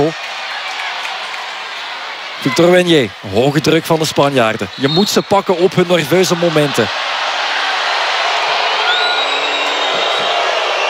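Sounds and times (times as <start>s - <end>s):
large stadium crowd roaring in protest: 0.0s - 10.8s
speech: 2.4s - 7.2s
shrill whistles from a stadium crowd: 4.7s - 5.4s, 8.6s - 10.8s.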